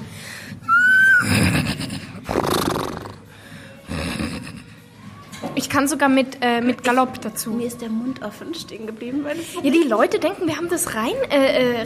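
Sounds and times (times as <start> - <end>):
person imitating a horse whinny: 0.7 - 3.2
loud snorting and breathy blowing bursts: 1.2 - 4.7
speech: 5.6 - 11.8.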